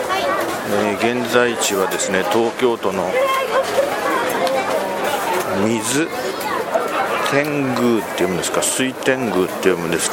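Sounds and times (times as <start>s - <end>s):
crowd chatter at outdoor event near Suitengu subway station in Tokyo: 0.0s - 10.1s
speech: 0.7s - 4.0s, 5.5s - 6.3s, 7.3s - 10.1s.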